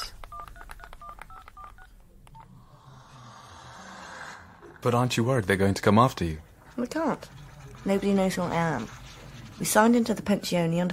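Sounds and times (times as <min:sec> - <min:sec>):
telephone keypad dialing tones: 0:00.0 - 0:02.5
speech: 0:04.8 - 0:09.0, 0:09.6 - 0:10.9.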